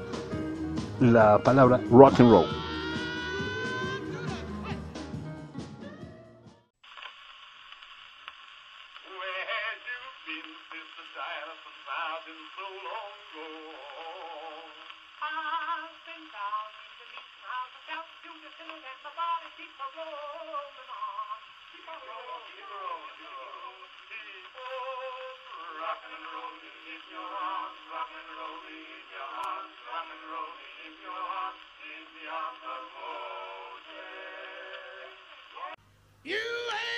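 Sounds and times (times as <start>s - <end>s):
jubilee gospel singers harmonizing on an early phonograph recording: 0.0s - 5.1s, 9.0s - 36.9s
fuller brighter music: 0.0s - 6.7s
speech: 1.0s - 2.6s
phonograph record surface hiss: 6.8s - 35.8s.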